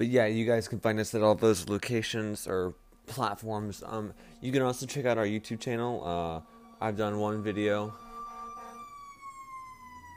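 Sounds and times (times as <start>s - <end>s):
speech: 0.0s - 8.0s
fire truck siren driving by outside the window: 3.4s - 10.1s.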